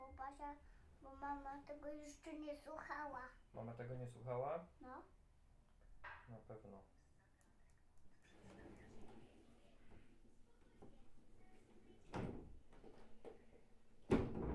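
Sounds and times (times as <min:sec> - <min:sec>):
speech: 0:00.2 - 0:05.2, 0:06.3 - 0:07.0
room rustling: 0:08.1 - 0:14.5
door banging shut: 0:14.1 - 0:14.5.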